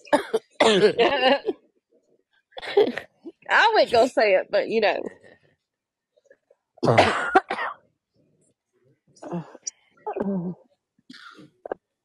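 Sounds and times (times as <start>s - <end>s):
person coughing harshly: 0.0s - 1.6s, 2.6s - 3.2s, 6.8s - 7.8s
speech: 0.1s - 1.6s, 2.8s - 5.2s, 6.8s - 7.4s, 9.2s - 11.2s.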